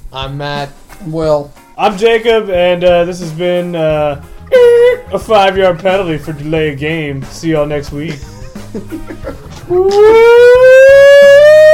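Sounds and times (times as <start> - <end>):
speech: 0.1 - 10.4
siren wailing: 4.5 - 5.1, 9.7 - 11.7
laughter: 8.0 - 10.3.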